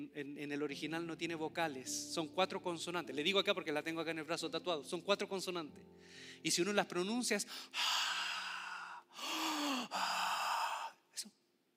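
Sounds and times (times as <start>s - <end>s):
speech: 0.0s - 8.2s
slow deliberate breathing: 5.9s - 6.4s, 7.5s - 11.1s.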